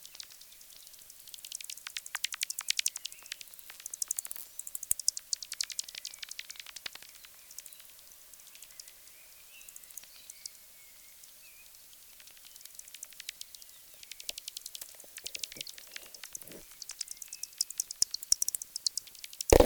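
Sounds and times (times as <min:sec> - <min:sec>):
bat echolocation clicks: 0:01.3 - 0:07.0, 0:12.2 - 0:19.5.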